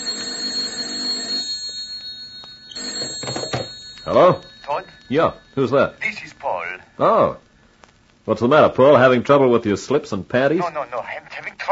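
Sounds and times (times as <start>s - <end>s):
telephone ringing with shrill high trilling tone: 0.0s - 6.9s
speech: 4.1s - 6.3s, 7.0s - 7.4s, 8.2s - 11.7s.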